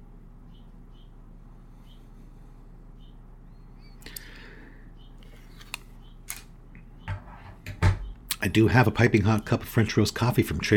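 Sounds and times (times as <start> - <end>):
faint birds chirping and twittering outdoors: 0.0 - 10.2
low steady hum: 0.0 - 10.7
sharp clicks: 5.2 - 6.5
speech: 8.4 - 10.7.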